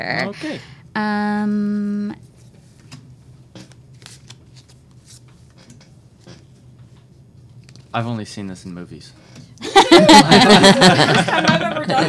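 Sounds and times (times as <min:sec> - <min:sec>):
speech: 0:00.0 - 0:02.3, 0:07.9 - 0:09.2, 0:10.0 - 0:12.0
low steady hum: 0:00.0 - 0:12.0
deck of cards being shuffled: 0:03.6 - 0:06.4
laughter: 0:09.6 - 0:12.0.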